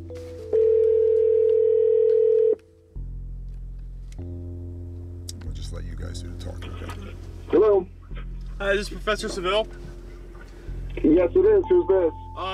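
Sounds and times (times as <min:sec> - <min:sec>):
outgoing mobile phone call ringing tone: 0:00.5 - 0:02.6, 0:11.6 - 0:12.5
speech: 0:08.6 - 0:09.9, 0:11.0 - 0:12.5.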